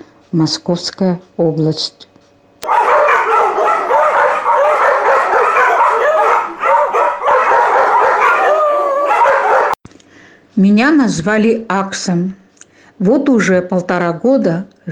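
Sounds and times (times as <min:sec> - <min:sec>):
speech: 0:00.3 - 0:02.1, 0:10.6 - 0:12.4, 0:13.0 - 0:14.9
chorus of dogs barking, yipping and howling at a guide-dog training school in Kupavna: 0:02.6 - 0:09.8.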